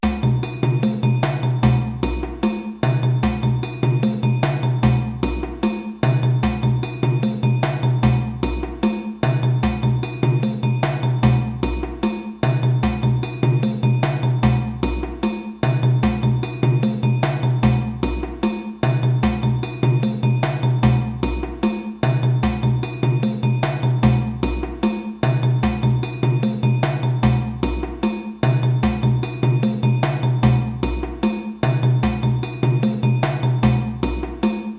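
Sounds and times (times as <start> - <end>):
djembe groove: 0.0 - 34.7.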